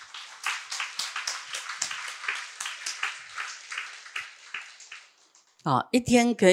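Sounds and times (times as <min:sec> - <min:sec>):
audience clapping hands: 0:00.0 - 0:05.6
speech: 0:05.6 - 0:06.5.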